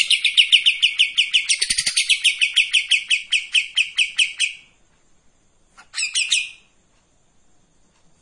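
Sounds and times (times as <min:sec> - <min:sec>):
streak-eared bulbul singing fast high buzzy chattering notes: 0:00.0 - 0:04.8, 0:05.8 - 0:06.8.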